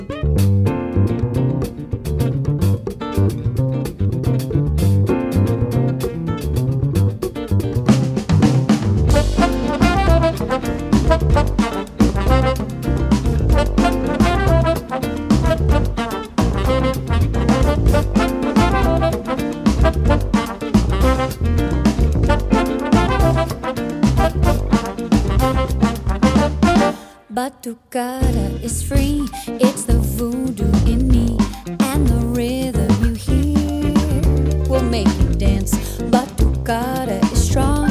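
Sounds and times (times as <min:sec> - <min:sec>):
batucada samba percussion ensemble: 0:00.4 - 0:27.0, 0:28.2 - 0:37.8.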